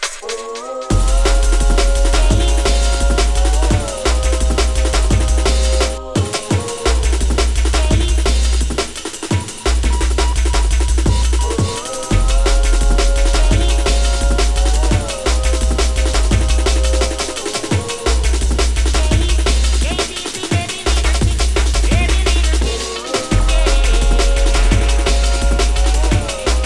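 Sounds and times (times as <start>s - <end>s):
jungle drum and bass DJ mix: 0.0s - 26.6s.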